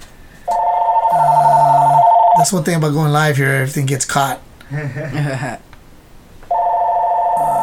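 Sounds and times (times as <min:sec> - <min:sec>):
phone ringing with loud electronic tone: 0:00.5 - 0:02.6, 0:06.5 - 0:07.6
speech: 0:02.4 - 0:05.7
laughter: 0:04.7 - 0:05.6.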